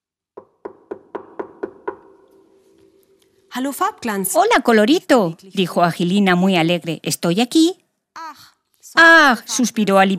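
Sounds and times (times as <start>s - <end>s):
knocking on a wooden door: 0.4s - 2.5s
speech: 3.6s - 7.8s, 8.9s - 10.1s.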